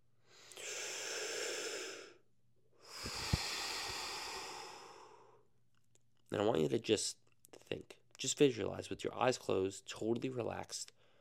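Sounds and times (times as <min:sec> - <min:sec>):
deep breathing during a guided relaxation: 0:00.2 - 0:02.2, 0:02.8 - 0:05.5
speech: 0:06.3 - 0:11.0.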